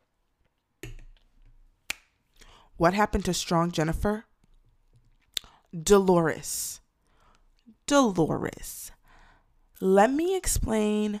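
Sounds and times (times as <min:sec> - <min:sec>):
speech: 0:02.8 - 0:04.3, 0:05.7 - 0:06.8, 0:07.9 - 0:09.0, 0:09.8 - 0:11.1
person sipping a drink: 0:05.1 - 0:05.7.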